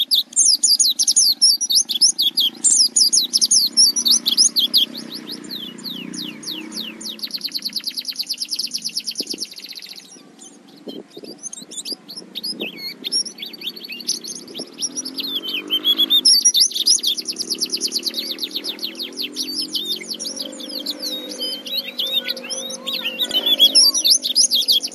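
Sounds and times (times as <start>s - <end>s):
white-eye singing rapid high twittering and slurred whistles: 0.0s - 24.9s.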